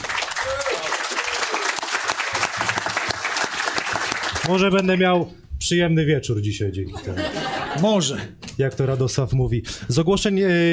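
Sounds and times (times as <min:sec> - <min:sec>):
room full of people clapping steadily: 0:00.0 - 0:04.6
speech: 0:04.5 - 0:10.7
laughter: 0:06.9 - 0:08.4.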